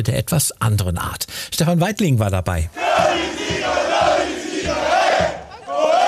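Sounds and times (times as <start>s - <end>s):
speech: 0.0s - 3.9s
large crowd of football fans cheering and chanting: 2.7s - 6.0s
rhythmic low thumping beat: 2.7s - 6.0s.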